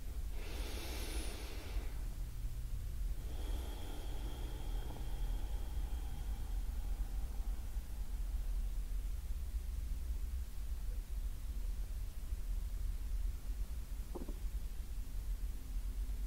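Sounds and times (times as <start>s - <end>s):
person breathing deeply during a meditation: 0.0s - 9.4s
low steady hum: 0.0s - 16.2s.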